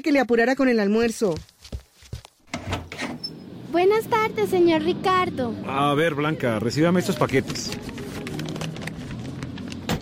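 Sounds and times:
speech: 0.0 - 1.8, 3.7 - 7.9
brief high door squeak: 2.6 - 3.5.

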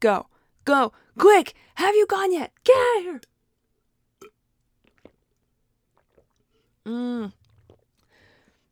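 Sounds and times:
speech: 0.0 - 3.3, 6.9 - 7.4
person sipping and slurping water: 4.8 - 5.2, 6.0 - 8.1.

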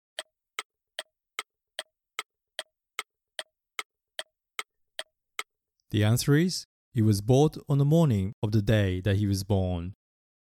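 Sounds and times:
clock ticking: 0.2 - 5.5
speech: 5.9 - 10.0.

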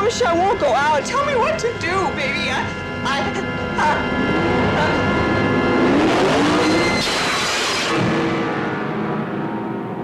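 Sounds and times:
speech: 0.1 - 5.1
car engine rumbling and revving: 3.6 - 9.6.

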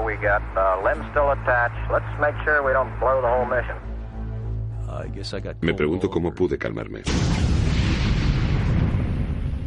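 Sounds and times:
speech: 0.2 - 3.9, 4.9 - 8.2
explosion of spacecraft service module: 7.1 - 9.6.

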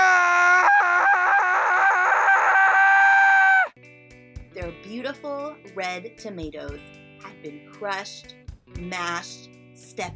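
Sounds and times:
man screaming in shock on finding crushed prize tomatoes in the garden: 0.0 - 3.8
speech: 5.0 - 10.1.

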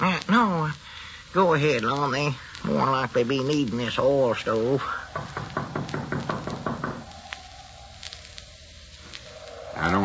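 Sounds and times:
speech: 0.2 - 5.7
hollow knocks on a wooden door: 5.1 - 7.1.

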